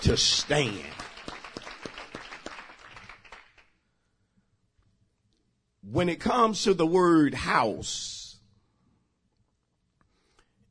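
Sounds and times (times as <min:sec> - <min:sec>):
speech: 0:00.0 - 0:01.1, 0:05.9 - 0:08.2
scattered applause: 0:00.0 - 0:03.7
audience clapping in a steady rhythmic beat: 0:00.0 - 0:03.8.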